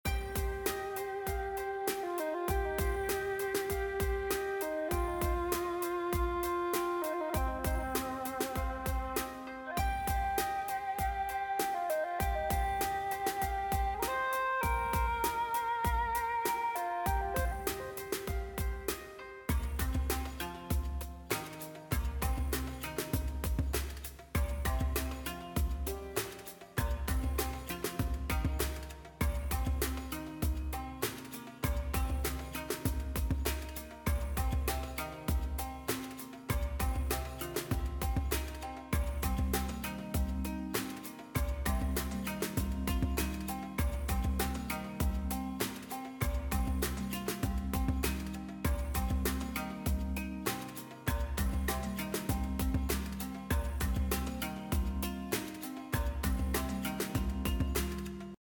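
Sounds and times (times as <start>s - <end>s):
slot game main menu background music: 0.0s - 58.3s.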